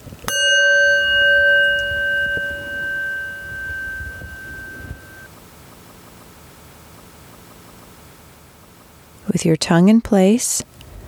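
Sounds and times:
meditation chime ringing: 0.3s - 5.3s
speech: 9.4s - 10.8s.

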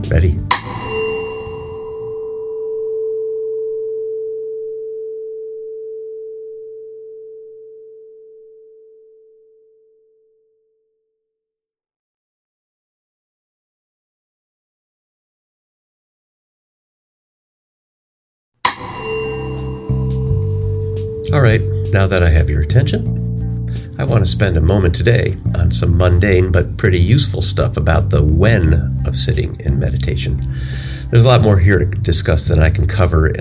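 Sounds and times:
speech: 0.1s - 0.6s, 21.4s - 23.4s, 24.0s - 33.3s
tuning fork struck and ringing with a pure tone: 0.4s - 11.2s, 18.6s - 25.4s.

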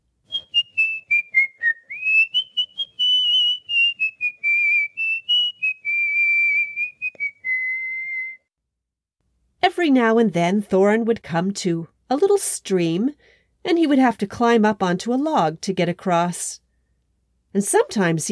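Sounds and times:
person whistling a bright cheerful melody: 0.3s - 8.4s
speech: 9.7s - 16.6s, 17.5s - 18.2s.

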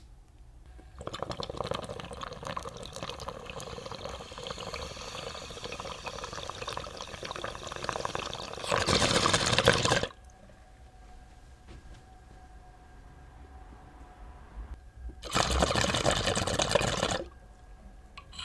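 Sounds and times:
bong water bubbling during a hit of banana punch: 0.8s - 10.3s, 15.1s - 17.4s.

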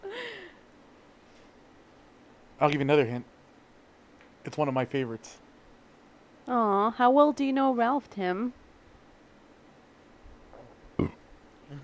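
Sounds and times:
speech: 2.6s - 3.3s, 4.4s - 5.4s, 6.4s - 8.6s
burp: 10.5s - 11.8s.

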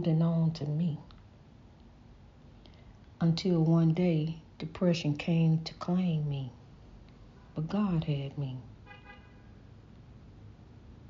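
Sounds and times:
speech: 0.0s - 1.2s, 3.2s - 6.6s, 7.6s - 8.7s
car horn honking: 8.8s - 9.6s.

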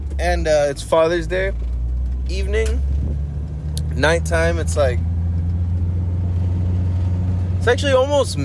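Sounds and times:
car engine drone: 0.0s - 8.4s
car tire hum: 0.0s - 8.4s
road noise inside a moving car driving home near midnight: 0.0s - 8.4s
speech: 0.2s - 1.7s, 2.3s - 2.9s, 4.0s - 5.1s, 7.6s - 8.4s.

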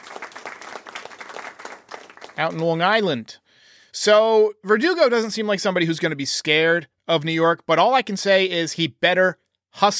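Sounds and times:
dense applause of many hands clapping: 0.0s - 3.1s
speech: 2.4s - 9.9s.

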